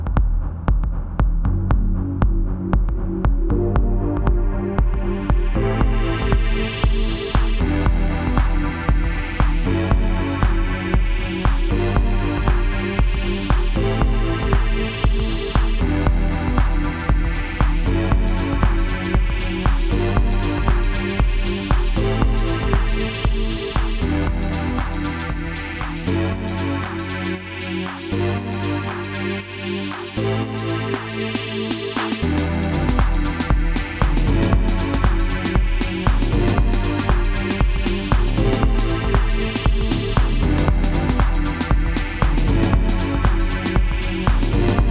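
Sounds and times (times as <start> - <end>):
house music on a drum machine: 0.1 - 44.9.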